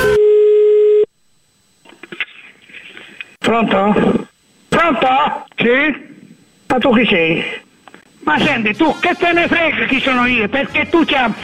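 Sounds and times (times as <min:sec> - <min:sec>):
telephone call tone: 0:00.0 - 0:01.1
speech: 0:03.5 - 0:06.1, 0:06.7 - 0:07.6, 0:08.2 - 0:11.4.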